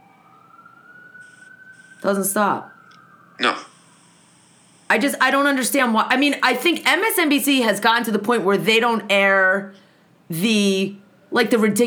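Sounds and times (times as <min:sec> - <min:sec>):
wailing emergency siren outdoors: 0:00.0 - 0:06.0
speech: 0:02.0 - 0:02.8, 0:03.4 - 0:03.7, 0:04.9 - 0:11.8.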